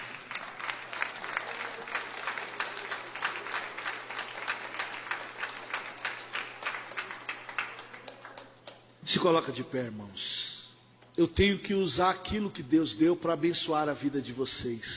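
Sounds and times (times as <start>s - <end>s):
audience applause: 0.0s - 8.9s
speech: 9.1s - 10.4s, 11.2s - 14.9s.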